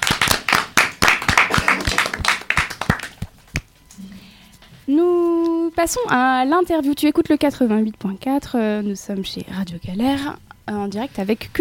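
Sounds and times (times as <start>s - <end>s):
small group clapping after a quiz: 0.0s - 3.7s
speech: 5.8s - 11.5s.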